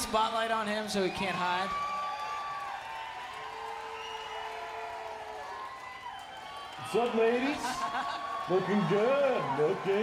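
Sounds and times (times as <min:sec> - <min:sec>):
speech: 0:00.1 - 0:01.8, 0:06.8 - 0:10.0
audience clapping for a man on stage: 0:01.0 - 0:10.0
laughter: 0:07.2 - 0:09.1.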